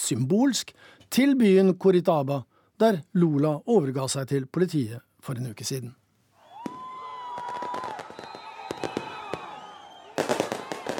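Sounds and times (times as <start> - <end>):
speech: 0.1 - 6.0
crowd whistling: 6.4 - 10.9
fireworks exploding at an outdoor celebration in Curitiba: 6.5 - 10.9.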